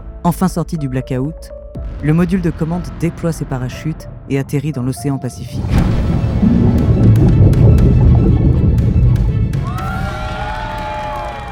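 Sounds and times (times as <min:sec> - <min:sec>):
speech: 0:00.2 - 0:06.2
roomful of people cheering in mission control room: 0:06.5 - 0:11.5
people clapping in mission control room: 0:06.8 - 0:11.5.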